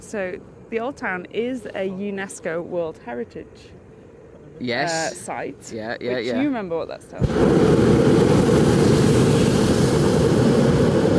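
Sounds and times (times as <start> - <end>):
speech: 0.1 - 3.8, 4.6 - 8.2
jet aircraft flying overhead: 7.4 - 11.1.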